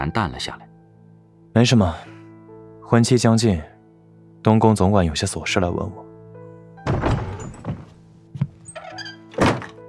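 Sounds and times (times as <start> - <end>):
speech: 0.0 - 0.7, 1.6 - 2.1, 2.9 - 3.7, 4.4 - 6.0
soft knocks and thuds: 6.8 - 8.7
door pushed open into a room: 6.8 - 9.8.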